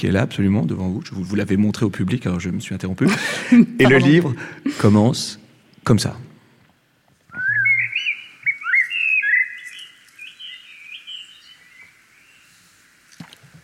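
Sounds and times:
speech: 0.0s - 6.3s
blackbird singing at dawn through an open bedroom window: 7.3s - 12.4s.

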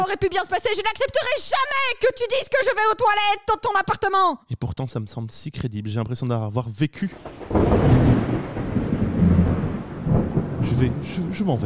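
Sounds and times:
speech: 0.0s - 8.2s, 10.8s - 11.6s
deep rolling thunder rumbling: 7.1s - 11.6s
steady rain hissing: 7.1s - 11.6s.

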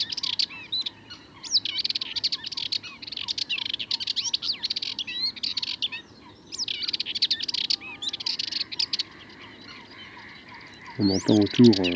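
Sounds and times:
Sardinian warbler song with rapid scratchy chattering phrases in the Camargue, France: 0.0s - 11.9s
speech: 11.0s - 11.9s.

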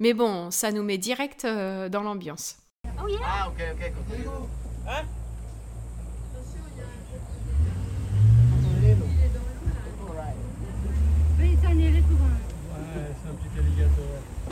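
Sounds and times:
speech: 0.0s - 5.2s
boat engine rumbling: 2.9s - 14.4s.

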